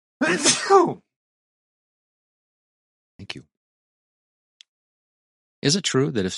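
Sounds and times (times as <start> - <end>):
person sneezing: 0.2 - 1.0
speech: 0.2 - 1.1, 5.6 - 6.3.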